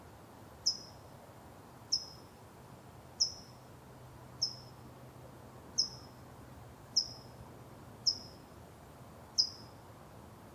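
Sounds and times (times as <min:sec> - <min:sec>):
soft steady hiss: 0:00.0 - 0:10.5
bird giving high chirps outdoors: 0:00.7 - 0:00.9, 0:04.4 - 0:04.6, 0:05.8 - 0:06.0, 0:08.1 - 0:08.3, 0:09.4 - 0:09.7.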